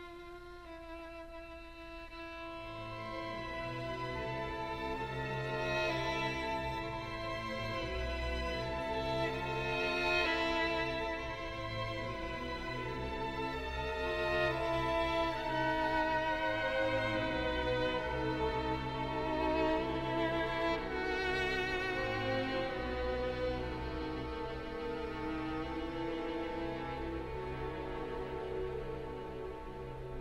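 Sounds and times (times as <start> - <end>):
strings overlay: 0.0 - 30.1.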